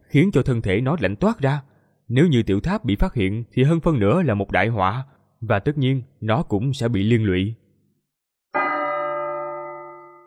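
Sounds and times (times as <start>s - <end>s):
speech: 0.1s - 7.6s
large bell struck and ringing: 8.6s - 10.2s.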